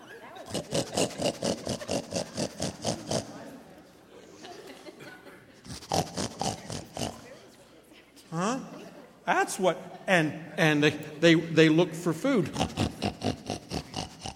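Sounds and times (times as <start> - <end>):
laughter: 0.0 - 7.5, 8.4 - 14.3
voice imitating a pig with snorting oinks while working a pig puppet: 0.4 - 3.4, 5.6 - 7.4, 12.4 - 14.3
speech: 9.5 - 12.9.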